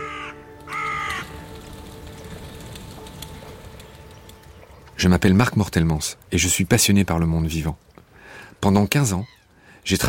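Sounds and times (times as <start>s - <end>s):
crow cawing: 0.0s - 1.5s
speech: 5.0s - 7.9s, 8.6s - 10.0s.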